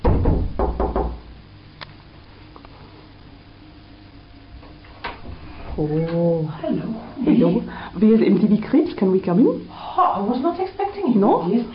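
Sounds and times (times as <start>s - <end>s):
knocking on the door of a flat: 0.0s - 1.3s
speech: 5.8s - 11.7s.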